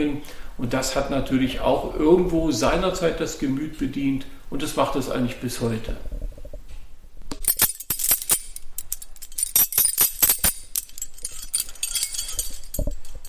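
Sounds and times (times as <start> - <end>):
speech: 0.0 - 6.1
heavy metal keys jangling on a large ring: 7.4 - 13.2.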